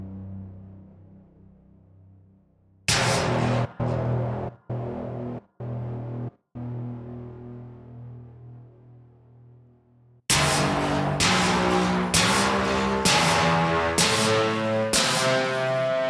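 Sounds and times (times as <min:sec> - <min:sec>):
dirty slam hits: 0:02.9 - 0:09.4, 0:10.3 - 0:16.0.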